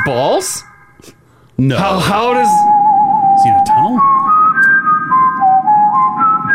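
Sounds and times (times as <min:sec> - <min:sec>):
speech: 0:00.1 - 0:02.7
man whistling a tune: 0:02.6 - 0:06.5.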